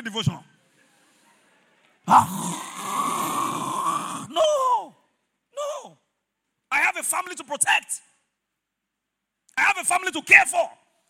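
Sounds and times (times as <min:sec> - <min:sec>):
speech: 0:00.0 - 0:00.5, 0:02.1 - 0:02.7, 0:07.3 - 0:08.1, 0:09.8 - 0:10.8
man's voice imitating snoring: 0:02.1 - 0:04.3.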